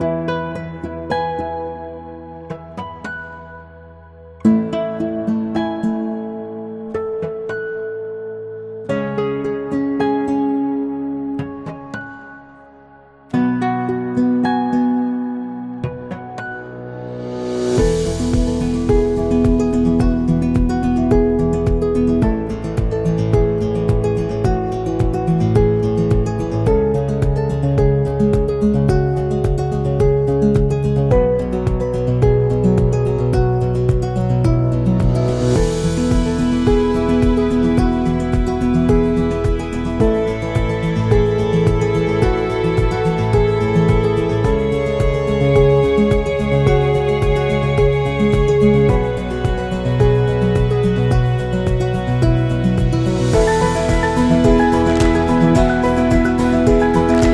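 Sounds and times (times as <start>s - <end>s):
acoustic guitar: 0.0s - 57.3s.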